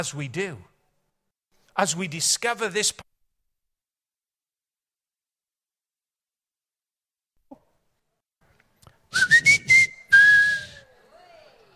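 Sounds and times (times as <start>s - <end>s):
speech: 0.0s - 0.7s, 1.8s - 3.1s, 9.1s - 9.4s
high whistle during a church sermon: 9.1s - 10.8s.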